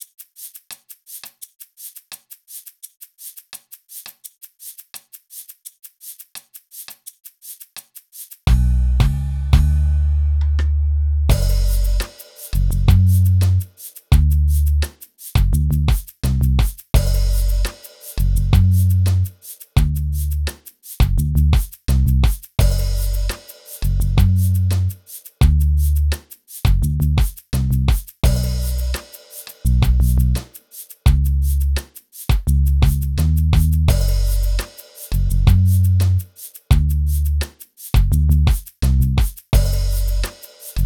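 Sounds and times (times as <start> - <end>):
bass: 8.5 - 40.8
drums: 8.5 - 40.8.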